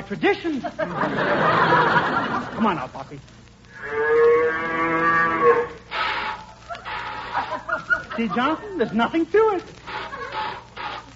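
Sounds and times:
speech: 0.1 - 4.3, 8.2 - 10.0
laughter: 0.6 - 2.8, 6.7 - 9.1, 9.9 - 11.1
cow mooing while being milked: 3.8 - 7.3
liquid spraying: 5.8 - 11.1.

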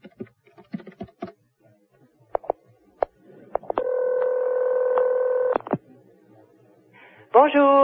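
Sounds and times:
steady sustained telephone tone: 3.6 - 5.7.

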